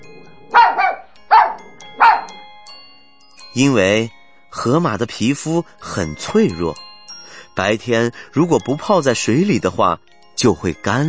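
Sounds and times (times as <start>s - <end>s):
small dog barking: 0.5s - 2.3s
speech: 3.6s - 6.9s, 7.6s - 11.0s.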